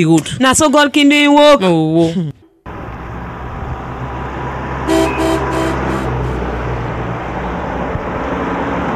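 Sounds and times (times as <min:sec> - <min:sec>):
speech: 0:00.0 - 0:02.4
steady low rumble of road traffic: 0:02.6 - 0:08.9
car horn honking in short toots: 0:04.8 - 0:06.7.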